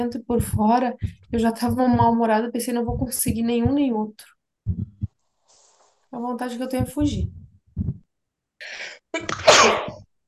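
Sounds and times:
speech: 0.0s - 4.9s, 6.1s - 7.9s, 8.6s - 10.0s
sneeze: 9.2s - 10.0s.

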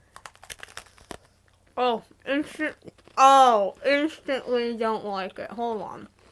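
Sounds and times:
biting and chewing a cookie-like snack: 0.0s - 1.7s
speech: 1.8s - 6.2s.

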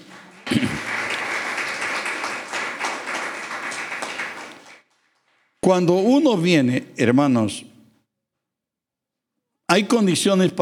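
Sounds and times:
audience applauding: 0.0s - 5.5s
speech: 5.7s - 7.7s, 9.7s - 10.6s.

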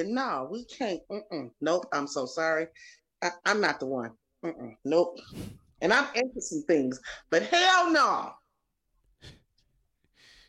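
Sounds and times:
speech: 0.0s - 8.4s, 9.2s - 9.4s
heavy breathing into the microphone: 5.2s - 5.8s.

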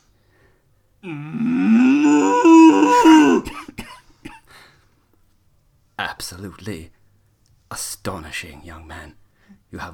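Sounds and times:
speech: 1.0s - 1.5s, 6.2s - 7.0s, 7.7s - 9.9s
young man imitating a cow mooing: 1.0s - 3.5s
breathy coughs or chuckles: 3.0s - 4.6s.

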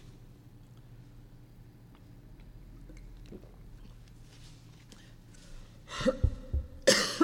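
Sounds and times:
harsh raspy coughing fit: 5.9s - 7.2s.

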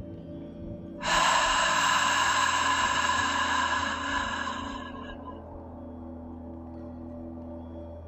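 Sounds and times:
soft steady tonal hum: 0.0s - 8.0s
deep inhale and exhale through mouth during guided breathing practice: 1.0s - 5.6s.

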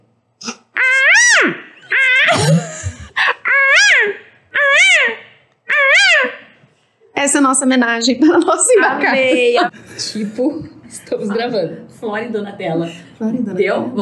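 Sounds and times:
person mimicking a jay's squawks: 0.4s - 6.6s
speech: 7.4s - 13.9s.

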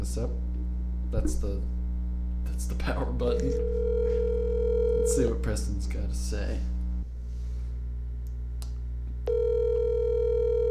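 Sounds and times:
speech: 0.0s - 0.5s, 1.1s - 1.8s, 2.5s - 4.3s, 5.0s - 6.7s
low electrical hum: 0.0s - 10.6s
buzzy telephone ringing tone on an outgoing call: 3.6s - 5.3s, 9.3s - 10.6s.

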